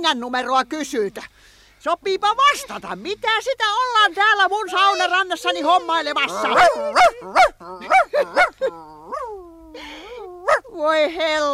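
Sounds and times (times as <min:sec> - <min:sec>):
speech: 0:00.0 - 0:09.0, 0:10.7 - 0:11.5
small dog barking: 0:06.3 - 0:09.4, 0:10.4 - 0:10.7.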